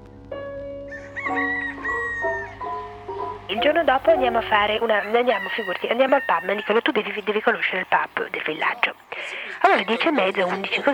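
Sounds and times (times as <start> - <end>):
rooster crowing in rural Suffolk, England: 0.8 - 3.6, 4.4 - 8.1
speech: 1.3 - 1.5, 3.5 - 10.9.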